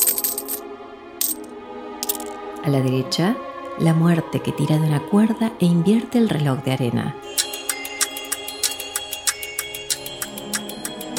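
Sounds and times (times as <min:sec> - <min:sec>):
gold coins jingling in a bag: 0:00.0 - 0:00.6
speech: 0:02.6 - 0:07.4.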